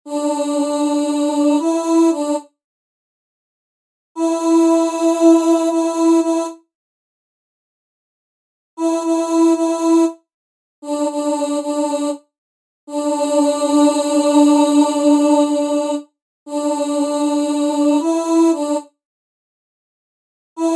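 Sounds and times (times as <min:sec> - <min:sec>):
chorus voice: 0:00.1 - 0:02.5, 0:04.2 - 0:06.6, 0:08.8 - 0:10.2, 0:10.8 - 0:12.3, 0:12.9 - 0:19.0, 0:20.6 - 0:20.7.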